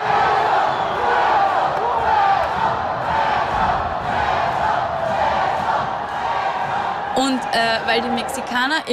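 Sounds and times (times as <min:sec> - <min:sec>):
lucha libre arena crowd chanting and shouting: 0:00.0 - 0:08.9
speech: 0:07.2 - 0:08.9.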